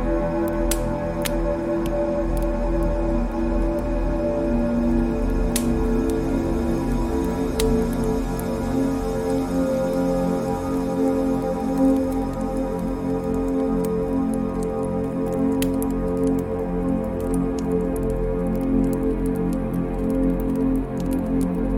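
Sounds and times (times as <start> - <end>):
fireplace pops and crackles: 0.0 - 21.7
fireplace burning: 0.4 - 3.9, 4.5 - 18.6.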